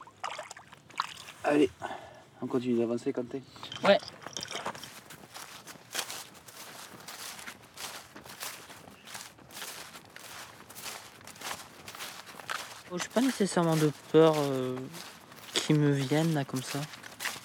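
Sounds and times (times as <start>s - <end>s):
speech: 1.4s - 4.2s, 12.9s - 15.1s, 15.7s - 17.0s
footsteps squelching through wet mud: 3.8s - 17.4s.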